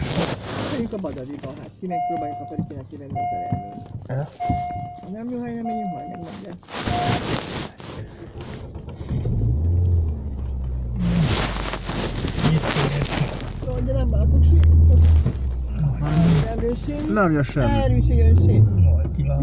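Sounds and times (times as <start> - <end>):
speech: 0.8 - 7.6, 13.8 - 19.4
car passing on a road: 8.2 - 19.4.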